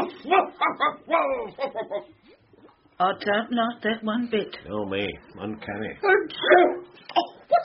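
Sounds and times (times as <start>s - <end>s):
giant Pyrenean mountain dog barking, yelping and whimpering: 0.0s - 2.0s, 6.1s - 6.8s
speech: 0.2s - 2.4s, 3.0s - 7.6s.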